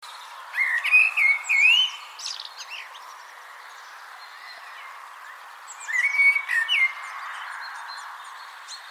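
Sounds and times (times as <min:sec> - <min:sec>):
Common blackbird Turdus merula singing fluty whistled notes: 0:00.6 - 0:02.1, 0:05.8 - 0:06.9.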